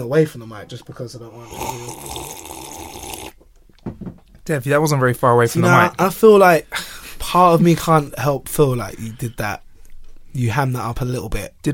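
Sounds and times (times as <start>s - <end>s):
speech: 0.0s - 3.1s, 4.5s - 9.6s, 10.3s - 11.7s
loud sip and gulp of water: 1.5s - 3.4s.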